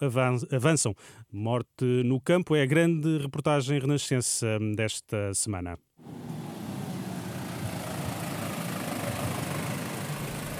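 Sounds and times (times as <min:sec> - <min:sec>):
speech: 0:00.0 - 0:06.3
agricultural tractor engine idling at an awareness event: 0:06.0 - 0:10.5.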